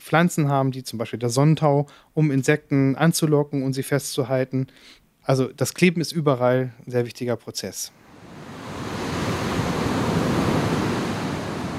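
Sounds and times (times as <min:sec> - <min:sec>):
speech: 0:00.1 - 0:08.0
ocean waves breaking in the surf: 0:08.0 - 0:11.7.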